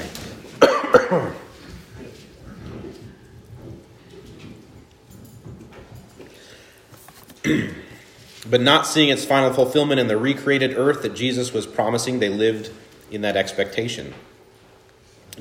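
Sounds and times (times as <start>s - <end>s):
coughing: 0.6s - 1.6s, 7.4s - 8.1s
speech: 1.1s - 1.4s, 8.5s - 14.3s.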